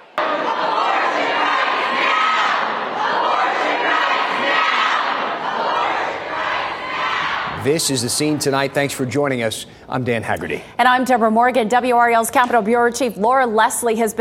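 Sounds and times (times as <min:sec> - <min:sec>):
large crowd of protesters shouting inside legislative chamber: 0:00.0 - 0:07.6
speech: 0:07.6 - 0:14.1.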